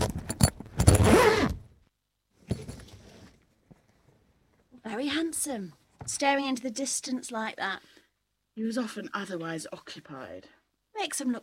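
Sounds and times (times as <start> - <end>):
zip being tugged and pulled: 0.8 - 1.6
speech: 5.0 - 8.0, 8.6 - 11.4.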